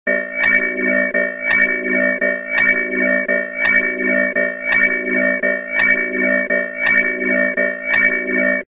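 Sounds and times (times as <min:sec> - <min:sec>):
intruder alert alarm: 0:00.1 - 0:08.6.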